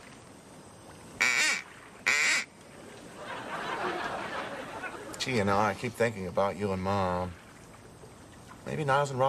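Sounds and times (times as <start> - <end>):
rustling hiss: 0.0 - 9.2
duck call blasts: 1.2 - 2.5
laughter: 2.8 - 5.6
speech: 5.2 - 7.4, 8.7 - 9.2.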